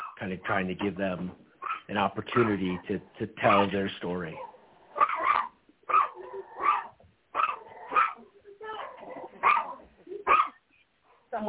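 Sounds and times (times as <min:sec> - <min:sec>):
speech: 0:00.2 - 0:04.5
dogs barking: 0:01.6 - 0:03.7, 0:04.3 - 0:10.6.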